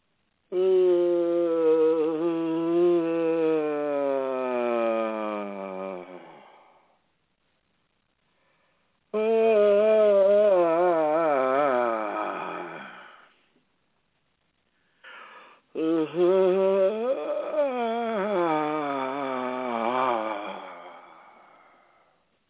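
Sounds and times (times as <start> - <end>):
vocal yawns: 0.5 - 7.0, 9.1 - 13.3, 15.0 - 22.2.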